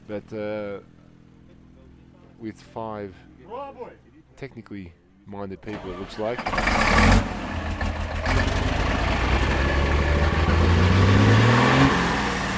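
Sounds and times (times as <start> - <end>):
speech: 0.1 - 1.0, 2.4 - 7.3
car engine starting and revving at a desert bivouac: 5.7 - 12.5.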